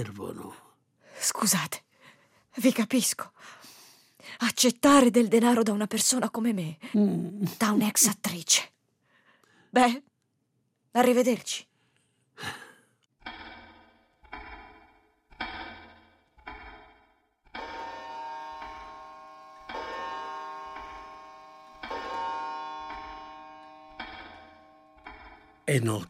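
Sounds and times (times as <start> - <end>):
speech: 0.0 - 0.6, 1.2 - 1.8, 2.6 - 3.6, 4.2 - 8.8, 9.7 - 10.1, 10.9 - 11.7, 12.4 - 12.6, 25.7 - 26.0
clock ticking: 13.2 - 26.0
sharp click of a clock: 14.2 - 18.9, 22.8 - 23.3, 23.9 - 25.6
clock chiming with bell notes and heavier strikes: 17.5 - 26.0.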